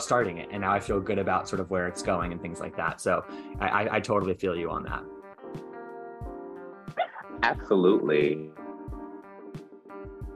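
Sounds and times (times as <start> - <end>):
speech: 0.0 - 5.2, 7.4 - 8.6
dog whining: 7.0 - 7.3.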